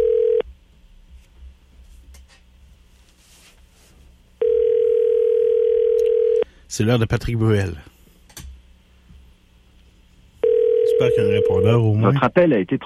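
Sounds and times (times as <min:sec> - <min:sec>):
ringback tone on an outgoing call to a mobile number in France: 0:00.0 - 0:00.4, 0:04.4 - 0:06.4, 0:10.4 - 0:11.7
speech: 0:06.8 - 0:07.9, 0:11.3 - 0:12.8.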